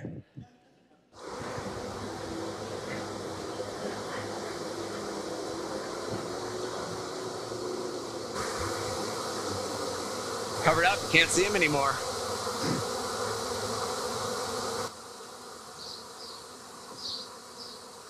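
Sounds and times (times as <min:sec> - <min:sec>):
dense swarm of bees buzzing: 0:01.2 - 0:18.0
speech: 0:10.6 - 0:12.1.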